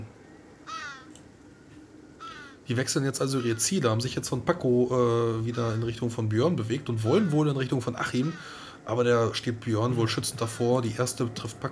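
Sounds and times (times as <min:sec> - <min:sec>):
crow cawing: 0:00.6 - 0:01.1, 0:02.2 - 0:02.6, 0:03.3 - 0:03.7, 0:08.1 - 0:08.8
speech: 0:02.7 - 0:11.7.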